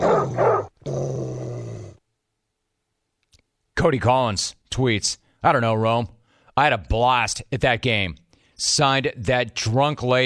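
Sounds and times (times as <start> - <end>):
dog barking: 0.0 - 0.8
dog growling: 0.0 - 2.0
speech: 3.8 - 10.2.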